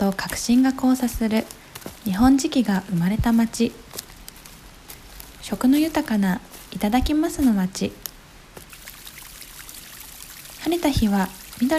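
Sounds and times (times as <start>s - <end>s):
speech: 0.1s - 3.9s, 5.5s - 8.0s, 10.6s - 11.7s
stream water flowing through Arita in Saga Prefecture, Japan: 8.6s - 11.7s.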